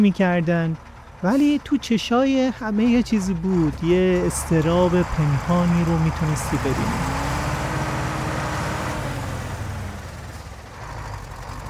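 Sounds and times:
speech: 0:00.0 - 0:07.2
heavy diesel engine of an old Mercedes-Benz bus rumbling: 0:00.0 - 0:11.6
road noise inside a large old bus: 0:00.0 - 0:11.6.

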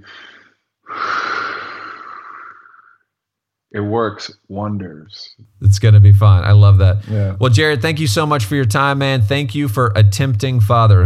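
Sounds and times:
person breathing deeply: 0:00.0 - 0:03.0, 0:07.0 - 0:07.4
speech: 0:03.8 - 0:11.0.

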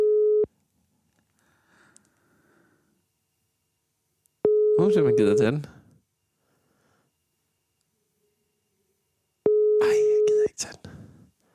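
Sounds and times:
telephone ringing tone: 0:00.0 - 0:00.5, 0:04.4 - 0:05.7, 0:09.5 - 0:10.5
speech: 0:04.9 - 0:05.8.

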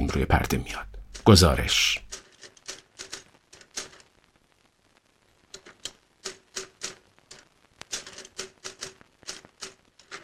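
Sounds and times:
speech: 0:00.1 - 0:02.1
typewriter keystrokes clattering: 0:02.1 - 0:04.0, 0:05.6 - 0:10.2.

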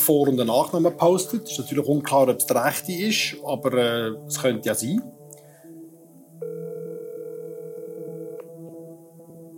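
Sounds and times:
speech: 0:00.0 - 0:05.2
telephone ringing tone while calling someone: 0:06.4 - 0:08.5.

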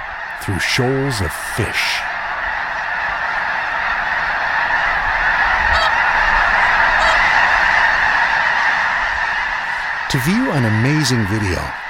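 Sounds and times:
large flock of snow geese honking in flight: 0:00.0 - 0:11.8
speech: 0:00.4 - 0:02.1, 0:10.1 - 0:11.8.

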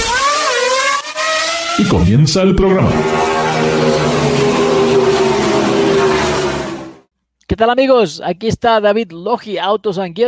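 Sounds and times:
car engine revving and accelerating in first gear: 0:00.0 - 0:07.1
speech: 0:01.8 - 0:04.0, 0:07.5 - 0:10.2.

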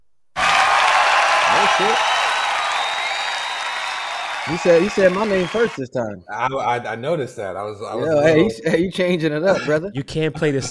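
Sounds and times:
crowd applause: 0:00.4 - 0:05.8
faint cheers: 0:00.4 - 0:05.8
speech: 0:01.8 - 0:02.1, 0:04.5 - 0:10.6.

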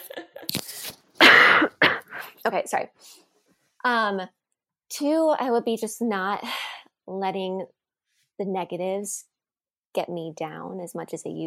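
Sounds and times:
person coughing: 0:01.2 - 0:02.4
speech: 0:02.4 - 0:03.2, 0:03.8 - 0:07.8, 0:08.4 - 0:09.3, 0:09.9 - 0:11.4.

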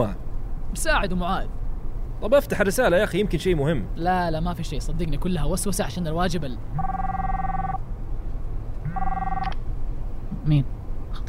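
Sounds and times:
speech: 0:00.0 - 0:01.6, 0:02.2 - 0:07.2, 0:10.4 - 0:11.2
steady hum: 0:00.0 - 0:11.2
phone ringing with an incoming call: 0:06.8 - 0:07.8, 0:08.8 - 0:09.6.

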